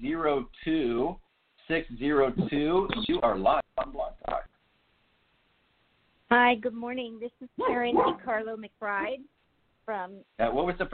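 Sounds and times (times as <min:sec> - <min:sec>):
speech: 0:00.0 - 0:04.5, 0:06.3 - 0:10.9
woman speaking on a phone-quality line: 0:06.3 - 0:09.3, 0:09.9 - 0:10.3
dog barking: 0:07.6 - 0:08.3.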